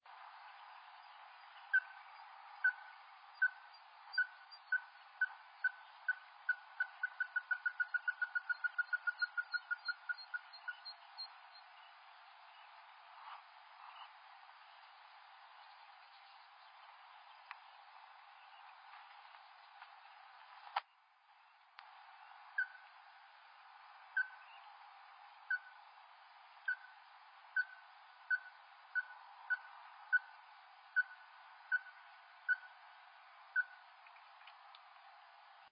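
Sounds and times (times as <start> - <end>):
Porzana fusca ruddy-breasted crake calling: 1.6 - 11.7, 22.5 - 23.0, 24.1 - 24.7, 25.4 - 25.9, 26.6 - 32.9, 33.6 - 34.2.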